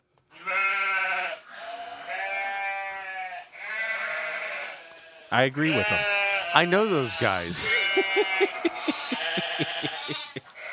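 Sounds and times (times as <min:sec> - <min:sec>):
sheep bleating: 0:00.3 - 0:10.7
speech: 0:05.3 - 0:10.3
laughter: 0:06.7 - 0:10.6.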